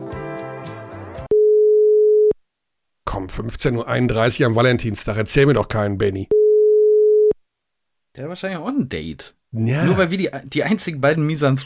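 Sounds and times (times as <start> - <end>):
short melodic phone jingle: 1.3 - 2.3, 6.3 - 7.4
speech: 3.2 - 6.4, 8.2 - 11.6.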